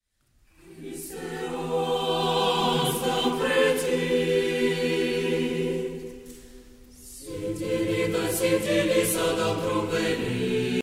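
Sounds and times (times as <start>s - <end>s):
choir singing Georgian chant: 0.6s - 10.8s.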